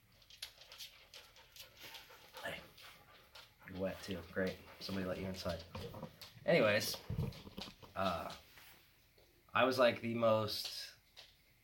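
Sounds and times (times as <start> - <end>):
female dog panting: 0.2 - 8.5
speech: 3.8 - 7.4, 8.0 - 8.4, 9.6 - 10.8.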